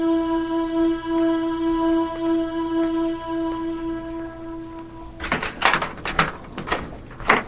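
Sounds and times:
steady droning tone: 0.0s - 6.3s
front door being unlocked and opened by a woman: 5.2s - 7.4s.

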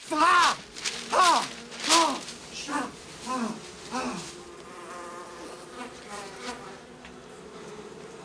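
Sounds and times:
swarm of bees buzzing around a man at a breakfast table: 0.0s - 8.2s.

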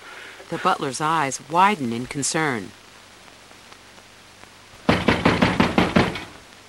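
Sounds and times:
speech: 0.5s - 2.8s
shoulder slamming against a wooden door: 4.9s - 6.3s.

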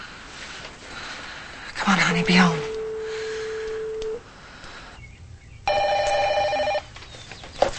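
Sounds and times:
steady telephone line tone: 1.8s - 4.2s
telephone ringing in a house: 1.9s - 4.2s, 5.7s - 6.9s
speech: 2.0s - 2.6s.

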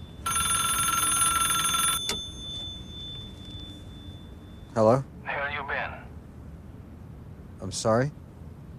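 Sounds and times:
public payphone ringing: 0.0s - 4.9s
speech: 4.8s - 5.1s, 7.6s - 8.2s.

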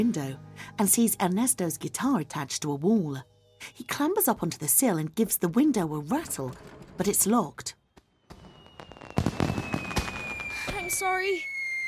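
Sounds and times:
speech: 0.0s - 7.8s, 10.9s - 11.5s
firework bursts with sharp crackling bangs: 8.0s - 11.8s
thin high whistle: 8.3s - 11.8s.

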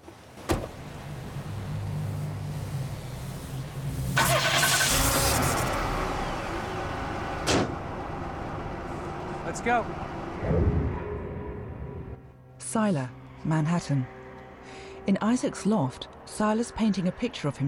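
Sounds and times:
car bonnet clunking open: 0.4s - 0.8s
car bonnet slamming shut: 0.4s - 0.8s, 7.4s - 7.8s
car engine idling: 0.8s - 10.5s
speech: 9.6s - 10.1s, 12.7s - 14.2s, 15.1s - 17.6s.

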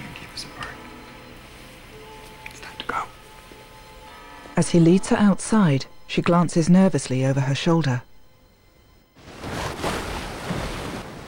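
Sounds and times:
speech: 4.6s - 8.1s
choppy sea waves washing against a sailboat at nearly dark: 9.2s - 11.2s.

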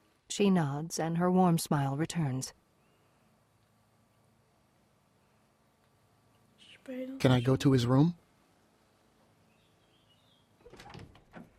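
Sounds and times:
speech: 0.4s - 2.6s, 6.9s - 8.2s
bedroom door slowly opening with a faint thin creak: 10.6s - 11.5s.

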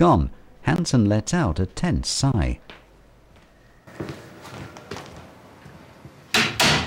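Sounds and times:
speech: 0.0s - 2.8s, 4.0s - 4.2s
soft footsteps: 2.6s - 6.3s.

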